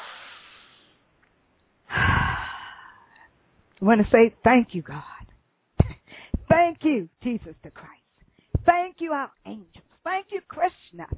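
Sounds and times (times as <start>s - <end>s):
deep breath during a guided prayer and relaxation moment: 0.0s - 1.0s, 1.9s - 3.3s, 6.0s - 6.4s
speech: 3.8s - 5.2s, 6.8s - 8.0s, 8.7s - 11.1s.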